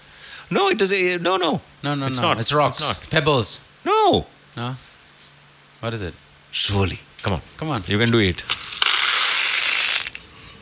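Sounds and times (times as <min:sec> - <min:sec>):
speech: 0:00.5 - 0:04.9, 0:05.8 - 0:08.6
beads pouring onto a surface: 0:08.5 - 0:10.2.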